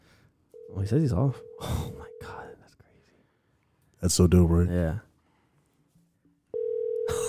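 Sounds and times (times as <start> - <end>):
outgoing call phone ringing tone through a handset: 0.6 - 2.4, 6.6 - 7.2
speech: 0.8 - 1.9, 4.0 - 5.1.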